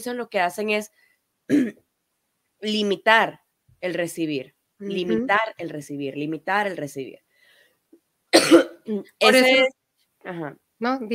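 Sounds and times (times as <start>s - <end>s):
speech: 0.0s - 1.8s, 2.6s - 7.2s, 8.3s - 11.1s
person coughing: 1.5s - 1.8s, 8.4s - 8.8s.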